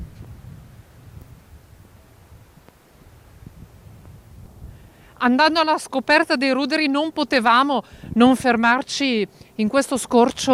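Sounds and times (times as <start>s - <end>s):
strong wind blowing outdoors buffeting the microphone: 0.0s - 6.3s, 7.0s - 8.8s
faint rustling gusts: 0.0s - 10.5s
speech: 5.2s - 10.5s.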